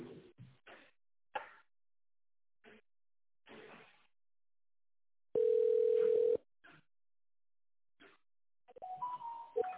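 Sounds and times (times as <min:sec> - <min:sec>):
telephone ringback tone: 0:05.4 - 0:06.4.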